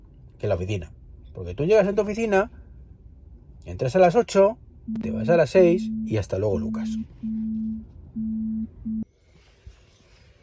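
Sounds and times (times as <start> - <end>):
speech: 0.4 - 2.6, 3.6 - 7.4
incoming phone call electronic tone bursts: 4.9 - 9.0.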